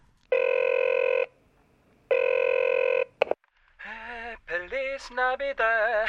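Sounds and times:
telephone ringing: 0:00.3 - 0:01.3, 0:02.1 - 0:03.2
speech: 0:05.0 - 0:06.0.

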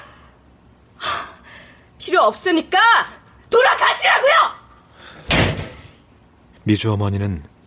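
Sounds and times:
speech: 0:02.0 - 0:04.6, 0:06.6 - 0:07.5
door slammed shut by a woman: 0:05.2 - 0:05.9.

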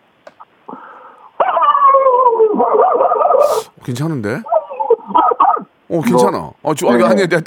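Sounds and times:
person imitating a dog barking: 0:01.4 - 0:03.8, 0:04.4 - 0:06.3
speech: 0:03.9 - 0:04.5, 0:05.9 - 0:07.4.

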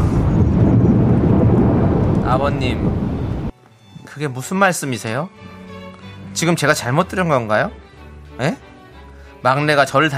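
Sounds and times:
loud sustained rumble of thunder: 0:00.0 - 0:03.5
speech: 0:02.3 - 0:03.1, 0:04.2 - 0:05.6, 0:06.4 - 0:08.7, 0:09.4 - 0:10.1.

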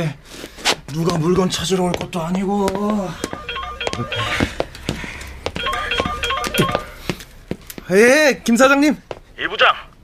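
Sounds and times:
speech: 0:00.0 - 0:03.4, 0:04.0 - 0:04.5, 0:07.9 - 0:09.9
short electronic phone dialing tones before a call: 0:03.2 - 0:04.7, 0:05.5 - 0:07.0.

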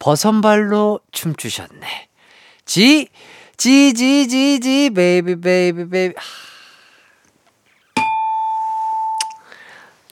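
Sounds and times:
speech: 0:00.0 - 0:02.1, 0:02.7 - 0:06.4
ding-dong-dang correct answer chime: 0:08.0 - 0:09.4.

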